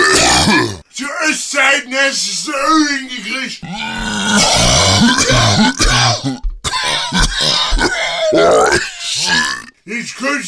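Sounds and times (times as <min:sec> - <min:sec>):
person clearing throat: 0:00.0 - 0:00.8, 0:04.0 - 0:09.6
person coughing: 0:00.0 - 0:00.8, 0:04.6 - 0:09.4
speech: 0:01.7 - 0:06.3, 0:10.2 - 0:10.4.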